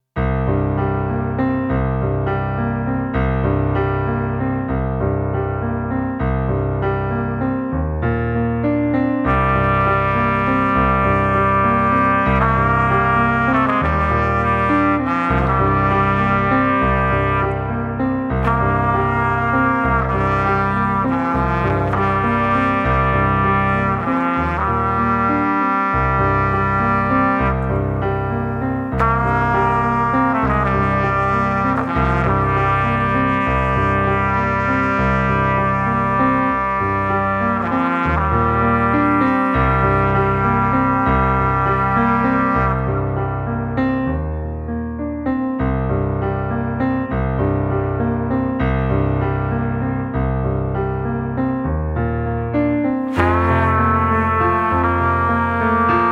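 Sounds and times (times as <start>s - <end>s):
piano in a duet with trumpet: 0.0s - 56.0s
trumpet in a duet with piano: 9.2s - 43.4s, 53.0s - 56.0s.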